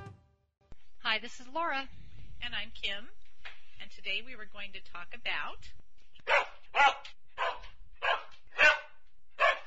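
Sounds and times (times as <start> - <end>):
speech: 1.1 - 3.2, 3.8 - 7.2
dog barking on command: 6.2 - 9.6.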